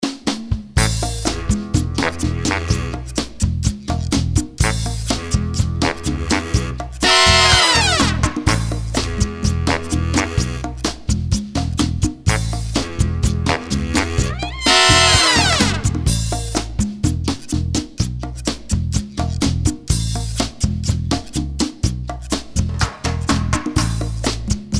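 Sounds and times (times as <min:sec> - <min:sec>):
latin big band music: 0:00.0 - 0:24.7.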